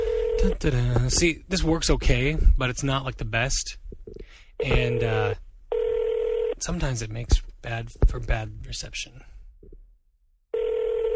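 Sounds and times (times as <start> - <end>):
electronic telephone ring tone of an outgoing call: 0.0 - 0.6, 4.6 - 6.6, 10.5 - 11.1
speech: 0.4 - 3.8, 4.6 - 5.4, 6.6 - 9.3.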